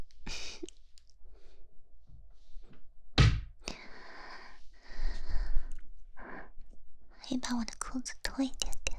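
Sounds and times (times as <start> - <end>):
door being shut with a heavy thud: 3.2 - 3.5
speech: 7.3 - 8.8.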